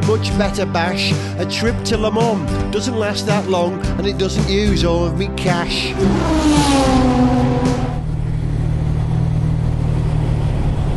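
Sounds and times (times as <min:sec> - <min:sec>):
speech: 0:00.1 - 0:07.6
XK150 car engine and exhaust burble driving up a ferry boarding ramp: 0:05.6 - 0:10.9.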